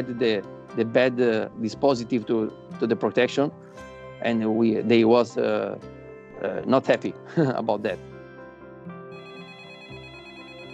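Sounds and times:
speech: 0.0s - 8.1s
telephone ringing with an electronic ringtone: 9.1s - 10.7s.

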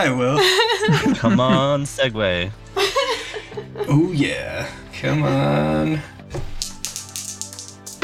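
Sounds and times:
speech: 0.0s - 2.9s, 3.8s - 6.4s
laughter: 0.3s - 1.9s, 2.8s - 4.1s
dice rolling across a hard tabletop: 6.4s - 8.0s.

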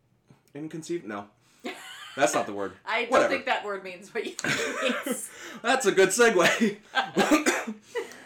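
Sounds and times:
speech: 0.5s - 1.5s, 2.2s - 8.0s
person coughing: 6.5s - 7.8s.

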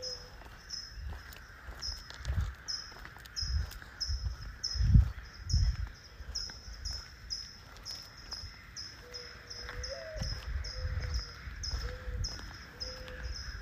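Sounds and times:
dove cooing: 0.0s - 0.4s, 8.8s - 13.6s
early morning birds chirping outdoors: 0.0s - 13.6s.

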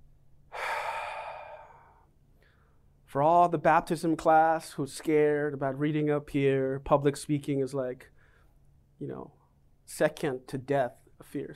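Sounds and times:
long exhaled breath during a church service: 0.5s - 2.8s
speech: 3.1s - 8.1s, 9.0s - 11.5s.

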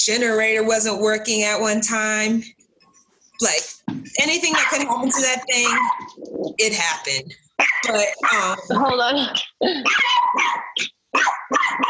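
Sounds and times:
speech: 0.0s - 2.6s, 3.4s - 11.8s
dog barking excitedly in yelping barks: 4.5s - 5.0s, 5.6s - 6.2s, 7.6s - 8.8s, 9.8s - 11.8s.

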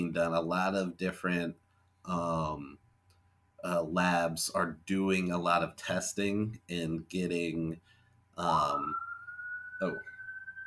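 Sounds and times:
speech: 0.0s - 2.8s, 3.6s - 9.1s, 9.8s - 10.1s
siren going off outside: 8.6s - 10.6s.

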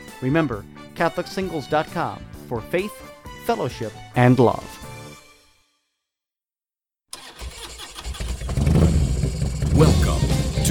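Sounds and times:
speech: 0.2s - 4.8s
motorcycle engine kickstarted and revving: 7.1s - 10.6s.

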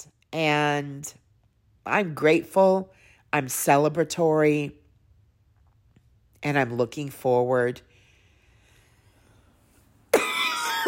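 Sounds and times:
speech: 0.0s - 1.2s, 1.8s - 4.8s, 6.4s - 7.9s
harsh cough: 10.1s - 10.8s.

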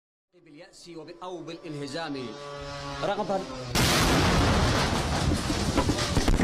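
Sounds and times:
speech: 0.4s - 5.6s
drone-fired missile explosion: 3.7s - 6.4s
rumbling debris and crackle: 3.8s - 6.4s.

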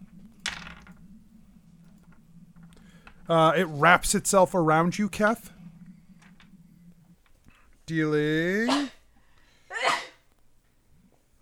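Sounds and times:
speech: 3.3s - 5.6s, 7.9s - 8.9s
sneeze: 8.7s - 9.0s, 9.7s - 10.2s.

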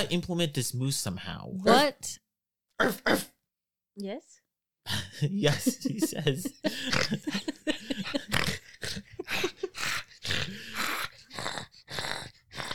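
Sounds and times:
speech: 0.0s - 2.2s, 2.8s - 3.3s, 4.0s - 7.5s
laughter: 5.1s - 10.6s
dog snarling and snorting: 6.7s - 12.7s.

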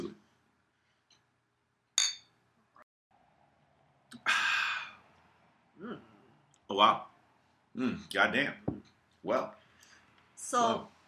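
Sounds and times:
beer glasses clinking in a toast: 2.0s - 2.3s
breathy exhale: 4.2s - 5.0s
speech: 6.7s - 7.1s, 7.8s - 9.6s, 10.4s - 10.9s.

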